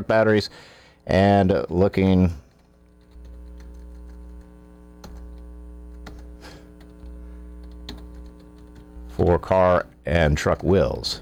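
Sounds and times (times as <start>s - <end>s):
speech: 0.0s - 2.4s, 9.2s - 11.2s
loud steady mains hum: 0.0s - 11.2s
typing on a computer keyboard: 1.5s - 8.9s, 10.4s - 10.9s.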